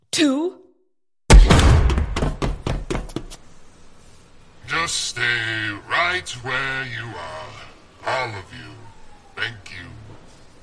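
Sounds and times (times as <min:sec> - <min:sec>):
speech: 0:00.1 - 0:00.6, 0:04.8 - 0:10.0
door bursting open: 0:01.3 - 0:02.5
clattering knocks and thuds: 0:01.3 - 0:03.3.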